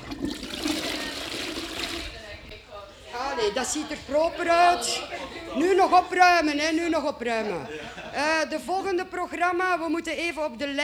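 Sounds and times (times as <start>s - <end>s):
laughter: 0.0s - 2.4s, 3.1s - 9.5s
toilet flushing: 0.0s - 2.5s
speech: 3.4s - 10.8s.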